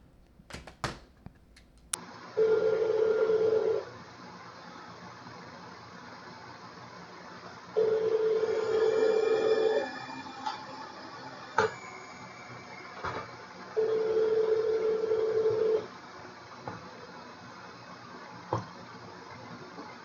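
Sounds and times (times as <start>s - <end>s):
phone ringback tones: 2.4s - 3.8s, 7.8s - 9.9s, 13.8s - 15.9s.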